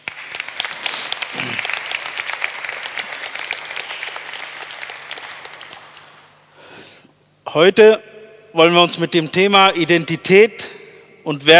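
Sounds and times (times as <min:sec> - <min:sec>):
audience applauding: 0:00.0 - 0:06.4
speech: 0:07.6 - 0:10.6, 0:11.2 - 0:11.5.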